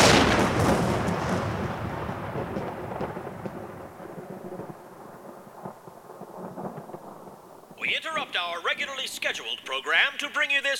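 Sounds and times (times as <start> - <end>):
nuclear explosion rumble with ground shaking: 0.0 - 7.4
speech: 8.2 - 10.7.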